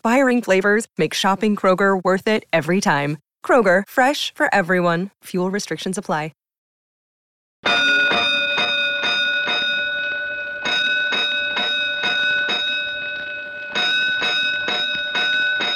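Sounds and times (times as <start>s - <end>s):
speech: 0.1s - 6.4s
fire station alarm bells ringing: 7.6s - 15.7s.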